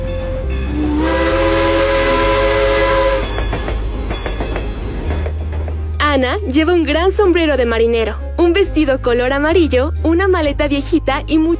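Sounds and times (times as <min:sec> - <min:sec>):
rhythmic train clatter: 0:00.0 - 0:07.8
steam train whistle at a small village railway station on Prince Edward Island: 0:00.7 - 0:03.4
speech: 0:06.2 - 0:11.5.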